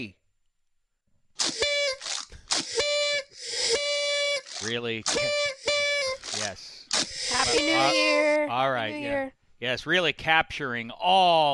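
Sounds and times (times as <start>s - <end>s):
speech: 0.0s - 0.2s, 4.6s - 5.8s, 6.4s - 11.5s
shrill reedy whistle sound effect blasts: 1.4s - 8.2s.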